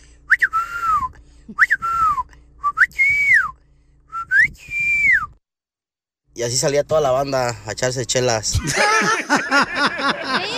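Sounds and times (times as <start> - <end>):
person whistling a family whistle call: 0.3 - 5.4
speech: 6.4 - 10.5
laughter: 8.5 - 10.5.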